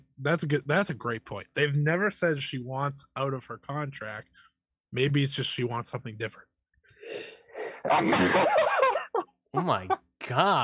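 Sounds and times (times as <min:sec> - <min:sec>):
speech: 0:00.2 - 0:06.5, 0:07.2 - 0:08.8, 0:09.5 - 0:10.6
breathy gasping inhales: 0:06.9 - 0:07.9
laughter: 0:07.8 - 0:10.0.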